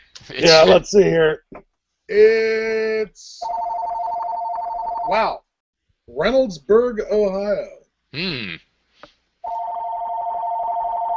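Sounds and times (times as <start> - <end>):
speech: 0.3 - 3.9, 5.1 - 5.4, 6.1 - 8.7
telephone ringing with electronic tone: 3.4 - 5.2, 9.4 - 11.1.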